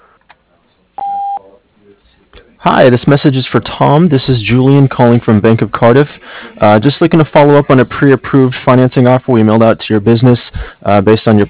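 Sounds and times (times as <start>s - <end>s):
faint noise: 0.0s - 11.4s
voicemail beep tone: 1.0s - 1.4s
speech: 2.6s - 11.4s.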